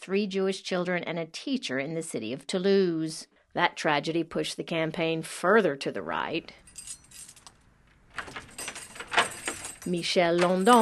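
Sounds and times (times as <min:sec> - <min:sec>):
speech: 0:00.0 - 0:06.6, 0:09.8 - 0:10.8
keys jingling: 0:06.6 - 0:10.8
metallic rattling: 0:06.6 - 0:10.8.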